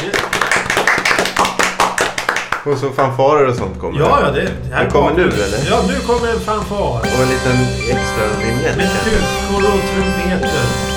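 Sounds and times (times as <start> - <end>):
applause for a person being honoured at a naming ceremony: 0.0 - 3.1
speech: 2.6 - 10.9.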